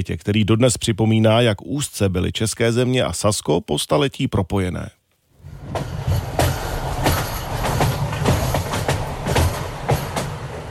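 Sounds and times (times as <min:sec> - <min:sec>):
speech: 0:00.0 - 0:05.0
train rolling across a high railway viaduct over the Mulde river near Freiberg: 0:05.4 - 0:10.6
train wheels clacking over rail joints: 0:05.6 - 0:10.6.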